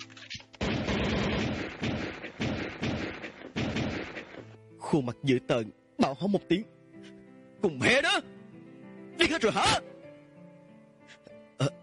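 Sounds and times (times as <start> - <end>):
gunshots fired up at a ceiling: 0.6 - 4.6
speech: 4.9 - 6.8, 7.6 - 8.4, 9.2 - 9.9.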